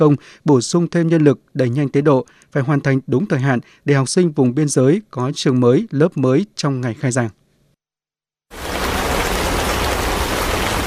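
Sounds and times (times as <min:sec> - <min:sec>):
speech: 0:00.0 - 0:07.4
heavy monsoon rain on boarding school construction sites in Gia Lai province Vietnam: 0:08.5 - 0:10.8.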